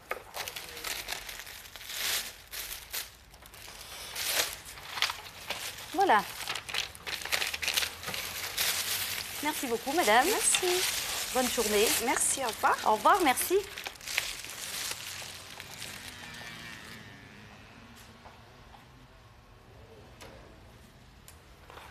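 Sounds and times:
medication label stickers being peeled and stuck down in a doctor's practice: 0.3 - 16.5
speech: 6.1 - 6.4, 9.4 - 13.8.

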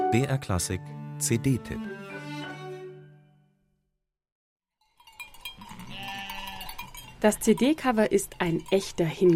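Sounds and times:
speech: 0.1 - 2.1, 7.2 - 9.3
sheep bleating: 5.7 - 6.8.

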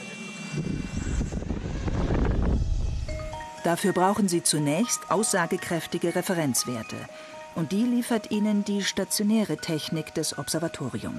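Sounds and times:
racing drone propellers whirring on takeoff at an observatory: 0.0 - 3.5
speech: 3.6 - 11.1.

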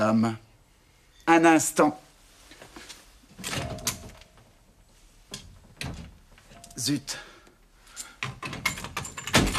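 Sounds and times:
speech: 0.0 - 0.4, 1.3 - 2.0, 6.8 - 7.2
stuck sideboard cupboard door rattling and thudding: 8.4 - 9.5.

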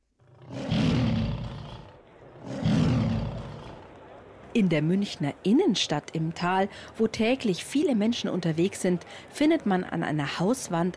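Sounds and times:
lion roaring: 0.2 - 3.9
speech: 4.6 - 10.9.

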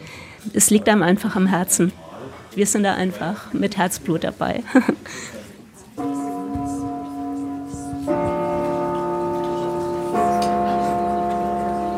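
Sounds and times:
speech: 0.5 - 2.0, 2.6 - 5.4
old three-key cinema gong chiming: 6.0 - 11.9.

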